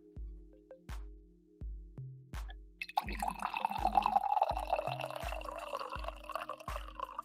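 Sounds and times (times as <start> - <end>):
soft regular low thumping beat: 0.0 - 7.2
coffee pouring into a cup: 2.8 - 7.2.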